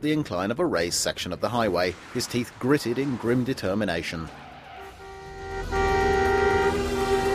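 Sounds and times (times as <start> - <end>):
speech: 0.0 - 4.5
car horns honking on a raised section of highway: 4.4 - 7.3.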